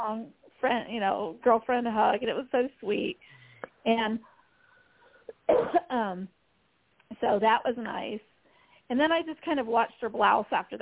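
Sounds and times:
speech: 0:00.0 - 0:04.3, 0:05.5 - 0:06.4, 0:07.1 - 0:08.3, 0:08.9 - 0:10.8
person coughing: 0:05.3 - 0:05.9.

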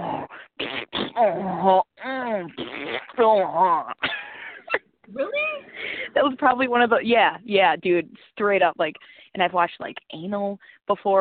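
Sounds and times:
voice imitating a string of farts: 0:00.0 - 0:04.0
speech: 0:01.2 - 0:02.6, 0:06.3 - 0:11.2.

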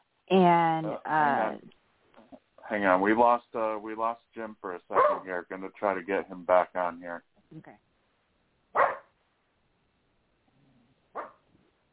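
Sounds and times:
dog whining faintly: 0:00.0 - 0:11.9
speech: 0:00.3 - 0:01.7, 0:02.7 - 0:07.9
dog barking: 0:04.9 - 0:05.3, 0:08.7 - 0:09.2, 0:11.1 - 0:11.4.

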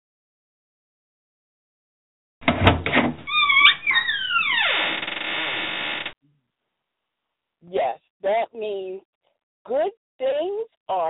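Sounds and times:
heavy thumps of a vault door: 0:02.4 - 0:03.3
vault door opening: 0:02.4 - 0:06.2
speech: 0:07.9 - 0:11.0.

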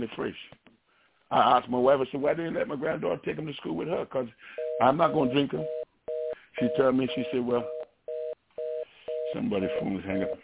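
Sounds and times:
speech: 0:00.0 - 0:00.7, 0:01.3 - 0:05.8, 0:06.6 - 0:07.8, 0:09.3 - 0:10.4
telephone line trouble beeps: 0:04.6 - 0:10.4.

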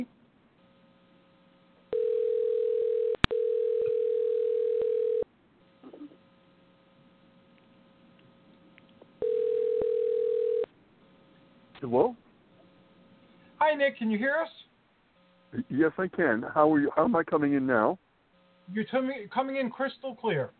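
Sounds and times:
telephone dial tone while a call is dialed: 0:01.9 - 0:05.3, 0:09.2 - 0:10.7
speech: 0:11.8 - 0:12.2, 0:13.7 - 0:14.7, 0:15.5 - 0:18.0, 0:18.7 - 0:20.5.

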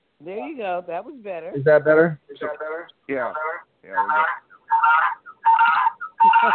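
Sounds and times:
speech: 0:00.2 - 0:05.0, 0:06.4 - 0:06.5
thin band-limited voice over a phone line: 0:01.6 - 0:04.3.

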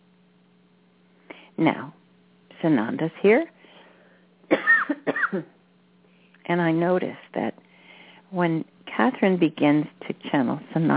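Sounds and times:
faint low hum: 0:00.0 - 0:10.9
speech: 0:01.6 - 0:02.0, 0:02.6 - 0:03.5, 0:05.3 - 0:05.6, 0:06.5 - 0:07.6, 0:08.3 - 0:10.9
woman coughing: 0:04.5 - 0:05.6.

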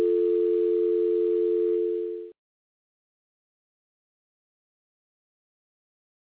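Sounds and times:
telephone dial tone after caller hangs up: 0:00.0 - 0:02.3.

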